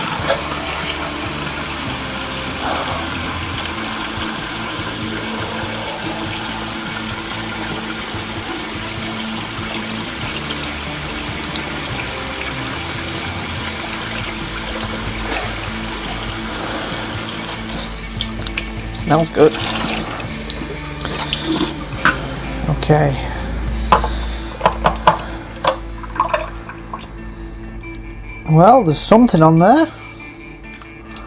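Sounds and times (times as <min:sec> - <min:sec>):
water running while an item is washed: 0:00.0 - 0:31.2
speech: 0:19.1 - 0:19.9, 0:22.9 - 0:23.3, 0:28.5 - 0:30.0.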